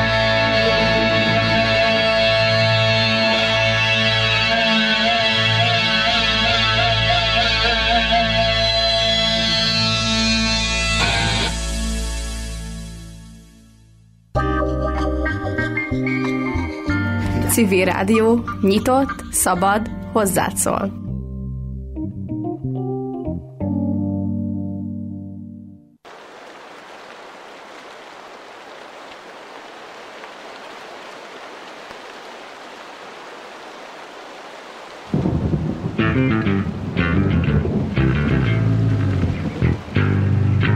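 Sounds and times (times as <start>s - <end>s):
heavy rain storm: 0.0s - 8.0s, 26.0s - 40.7s
music: 0.0s - 26.0s, 35.4s - 40.7s
speech: 17.8s - 21.0s.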